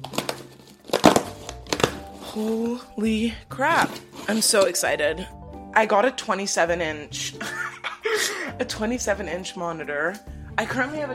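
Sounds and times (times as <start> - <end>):
parcel packaging crinkling and rustling: 0.0 - 2.9
plastic crackle: 0.0 - 2.9
speech: 2.3 - 7.4, 8.6 - 11.1
laughter: 7.4 - 8.5.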